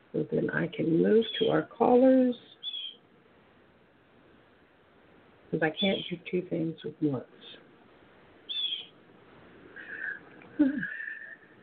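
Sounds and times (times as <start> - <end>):
speech: 0.6 - 2.6, 5.5 - 7.6
birds singing outside on a sunny Oklahoma day: 1.2 - 1.6, 2.5 - 3.0, 5.7 - 6.2, 8.4 - 9.0.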